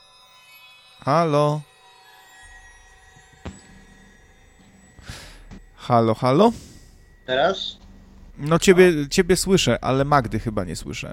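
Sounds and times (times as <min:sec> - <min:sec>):
speech: 0:01.0 - 0:01.7, 0:05.9 - 0:06.7, 0:07.3 - 0:07.8, 0:08.4 - 0:11.1
faint electronic ringing of a group call invitation: 0:02.4 - 0:11.1.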